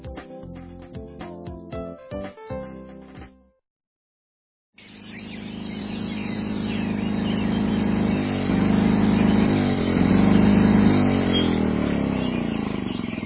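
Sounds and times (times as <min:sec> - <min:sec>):
lawnmower engine running: 0:04.8 - 0:13.2.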